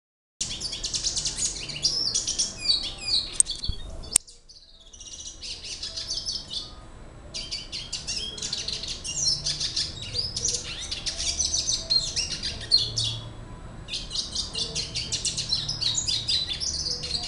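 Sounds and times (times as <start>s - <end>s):
red siskin song of fast buzzy high twitters: 0.4s - 17.2s
sharp clicks: 3.3s - 4.3s.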